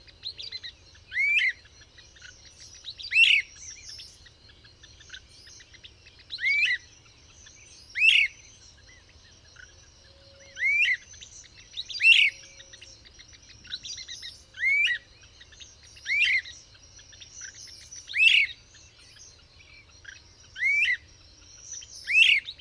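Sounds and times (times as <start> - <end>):
bird singing chirpy phrases: 0.0 - 22.5.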